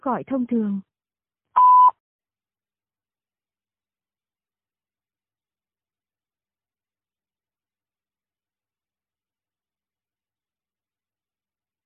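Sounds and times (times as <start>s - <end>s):
speech: 0.0s - 0.9s
voicemail beep: 1.6s - 2.0s.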